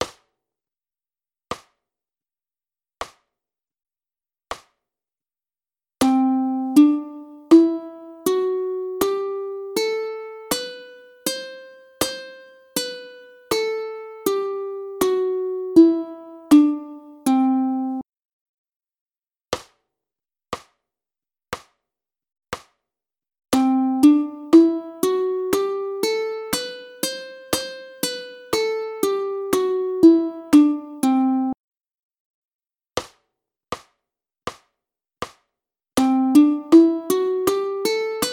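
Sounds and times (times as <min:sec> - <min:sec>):
ukulele playing Lydian scale: 0:06.0 - 0:18.0, 0:23.6 - 0:31.6, 0:36.0 - 0:38.3.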